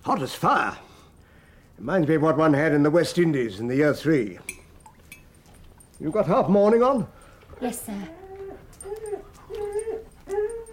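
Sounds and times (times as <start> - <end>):
speech: 0.0 - 0.9, 1.8 - 4.6, 6.0 - 8.2
Labrador dogs whimpering: 7.5 - 10.7.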